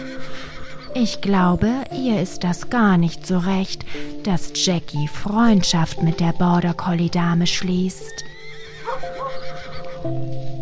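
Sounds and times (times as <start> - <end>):
horse neighing excitedly on a paddock: 0.0 - 1.0, 8.2 - 10.1
speech: 1.0 - 8.3.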